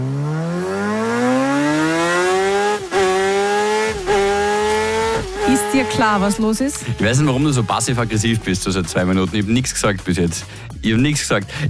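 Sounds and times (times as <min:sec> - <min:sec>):
MotoGP racing motorcycle engine screaming: 0:00.0 - 0:09.3
speech: 0:05.7 - 0:11.6.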